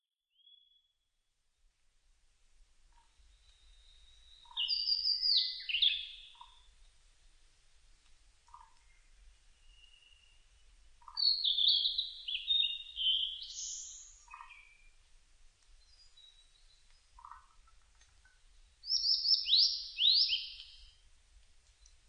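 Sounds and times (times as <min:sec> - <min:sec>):
ooruri singing: 0:03.1 - 0:06.8, 0:08.6 - 0:15.0, 0:15.8 - 0:17.8, 0:18.5 - 0:21.0.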